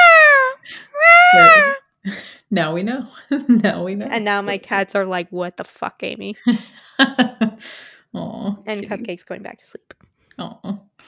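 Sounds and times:
human voice imitating a peacock call: 0:00.0 - 0:01.8
speech: 0:01.3 - 0:11.0.

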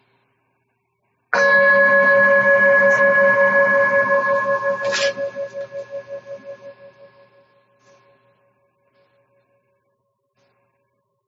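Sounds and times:
meditation bell ringing: 0:01.4 - 0:07.4.

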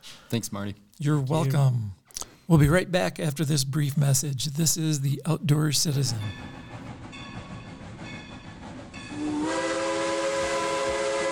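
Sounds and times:
speech: 0:00.3 - 0:06.6
steam train chugging rumble: 0:03.2 - 0:11.3
steam train whistle: 0:09.1 - 0:11.3.

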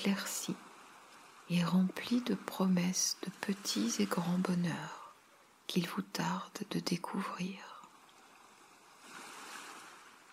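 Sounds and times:
speech: 0:00.0 - 0:00.6, 0:01.5 - 0:05.0, 0:05.7 - 0:07.7
ocean waves breaking on shore: 0:00.0 - 0:05.7, 0:07.9 - 0:10.3.

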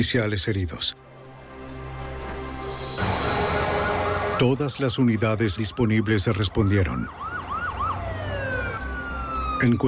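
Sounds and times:
speech: 0:00.0 - 0:01.1, 0:04.4 - 0:07.3, 0:09.6 - 0:09.8
police car sirens wailing in rising and falling sweeps: 0:03.0 - 0:09.8.

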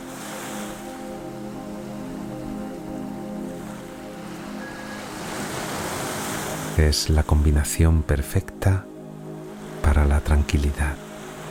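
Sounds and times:
gentle ocean waves with a light breeze: 0:00.0 - 0:11.5
speech: 0:06.8 - 0:08.9, 0:10.2 - 0:11.0.

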